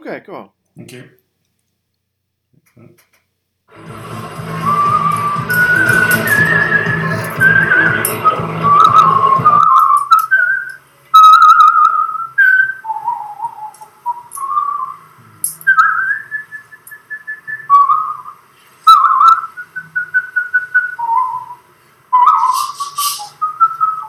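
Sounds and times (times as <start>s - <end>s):
speech: 0.0s - 1.2s, 2.6s - 4.7s
man whistling a classical melody: 3.8s - 10.8s, 11.8s - 15.0s, 15.6s - 24.0s.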